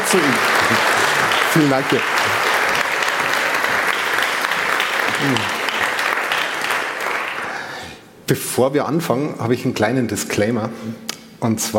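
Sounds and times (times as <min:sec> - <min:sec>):
audience applause: 0:00.0 - 0:07.8
speech: 0:00.1 - 0:02.2, 0:05.2 - 0:05.6, 0:08.3 - 0:11.7
voice murmuring: 0:05.1 - 0:05.7.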